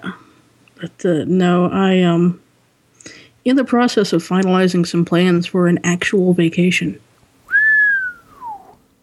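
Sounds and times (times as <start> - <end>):
speech: 0.8 - 2.4, 3.0 - 7.0
person whistling: 7.5 - 8.8.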